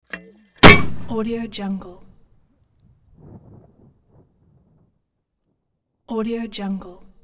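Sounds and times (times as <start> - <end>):
mortar launch: 0.6 - 1.6.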